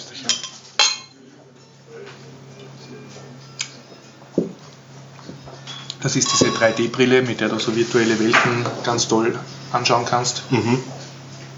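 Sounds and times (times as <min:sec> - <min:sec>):
low hum: 0:00.0 - 0:11.5
glasses clinking in a toast: 0:00.3 - 0:01.2, 0:05.3 - 0:07.3
speech: 0:06.0 - 0:11.0.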